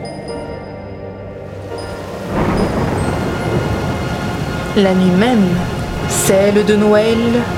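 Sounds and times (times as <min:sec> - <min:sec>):
violent storm wind over forest: 0:01.5 - 0:07.5
speech: 0:04.8 - 0:07.5.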